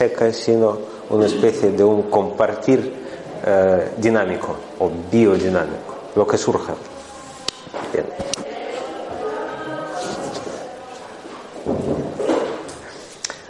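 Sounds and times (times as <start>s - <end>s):
speech: 0.0s - 7.0s, 7.9s - 8.3s
indistinct voices murmuring in a room: 0.0s - 13.4s
door being eased shut: 11.6s - 12.7s.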